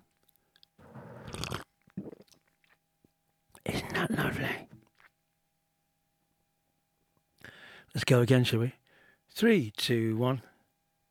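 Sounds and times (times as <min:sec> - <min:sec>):
exaggerated slurping sip of an iced latte: 0:00.8 - 0:02.4
speech: 0:07.9 - 0:10.5.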